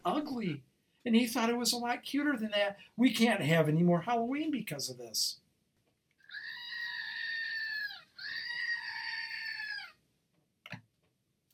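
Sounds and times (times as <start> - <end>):
speech: 0.0 - 5.4
loud shrill scream: 6.2 - 10.0.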